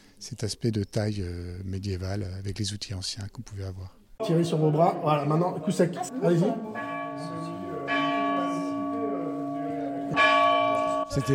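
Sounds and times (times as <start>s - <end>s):
speech: 0.2s - 7.5s, 11.1s - 11.3s
rehung chapel bell tolling: 4.2s - 11.3s.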